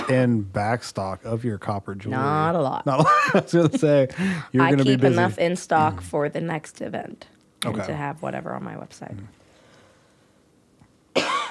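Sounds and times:
person coughing during an interview: 0:00.0 - 0:00.3, 0:11.2 - 0:11.4
speech: 0:00.1 - 0:09.4
laughter: 0:02.1 - 0:06.2.

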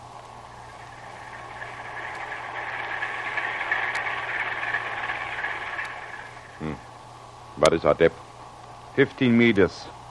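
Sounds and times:
low hum: 0:00.0 - 0:07.6
ship's heavy engines and two propellers churning: 0:00.5 - 0:06.9
speech: 0:07.6 - 0:08.2, 0:09.0 - 0:10.0.

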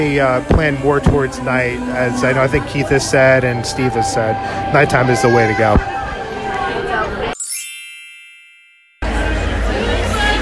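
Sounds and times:
speech: 0:00.0 - 0:06.0
dense theme park crowd exiting after a nighttime show murmuring and shuffling: 0:00.0 - 0:07.4, 0:09.0 - 0:10.3
bright ringing chime: 0:07.4 - 0:09.0.

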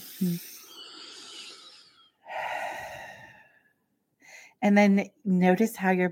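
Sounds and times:
soft airy deep breaths during a calming mindfulness exercise: 0:00.0 - 0:04.6
speech: 0:00.2 - 0:00.6, 0:04.6 - 0:06.0.

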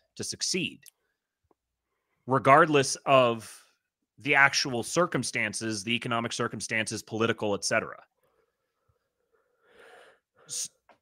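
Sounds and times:
speech: 0:00.2 - 0:01.0, 0:02.3 - 0:03.6, 0:04.2 - 0:08.1, 0:10.5 - 0:10.8
breathing into a microphone: 0:08.2 - 0:10.6.

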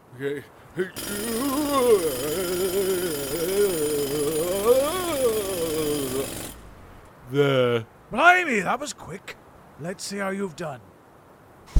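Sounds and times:
speech: 0:00.2 - 0:03.9, 0:07.3 - 0:10.9
voice imitating an auger drilling through mountain rock: 0:00.8 - 0:06.7.

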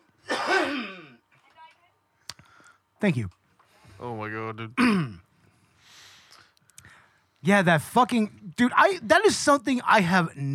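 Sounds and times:
loud rough raspy throat clearing: 0:00.3 - 0:01.2, 0:04.8 - 0:05.3
speech: 0:03.0 - 0:03.4, 0:04.0 - 0:05.2, 0:07.4 - 0:10.5.

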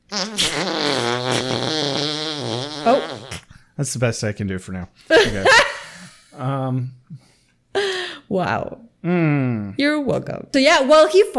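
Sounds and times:
person imitating a long fart with their voice: 0:00.0 - 0:03.5
speech: 0:03.8 - 0:05.7, 0:06.4 - 0:11.3.

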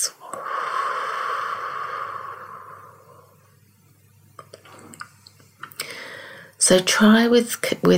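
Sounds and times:
slow breathy exhale during breathing exercise: 0:00.1 - 0:03.6, 0:05.8 - 0:06.5
speech: 0:06.7 - 0:07.9.

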